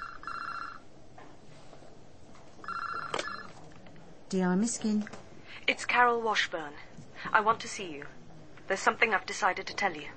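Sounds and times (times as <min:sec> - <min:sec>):
desk telephone ringing with electronic trill: 0:00.0 - 0:00.9, 0:02.6 - 0:03.6
faint room noise: 0:00.0 - 0:10.1
speech: 0:04.3 - 0:10.1.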